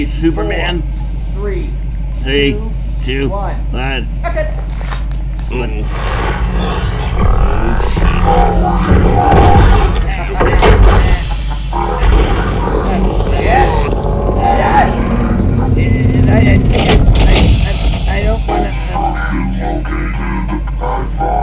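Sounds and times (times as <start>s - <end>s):
speech: 0.0s - 4.7s, 5.5s - 9.6s, 18.4s - 21.4s
ice cream truck engine droning as it is hauled off a property: 0.0s - 21.4s
indistinct voices: 0.0s - 21.4s
mechanical clunks and creaks of a hauled ice cream truck: 4.6s - 18.2s.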